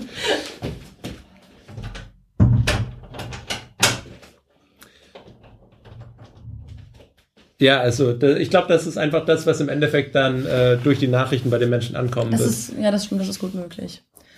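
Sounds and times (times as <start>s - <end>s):
laughter: 0.0s - 0.6s
door rattling as it settles: 1.7s - 4.2s, 5.4s - 7.1s
door shutting with a heavy thud: 2.4s - 4.1s
speech: 7.6s - 14.2s.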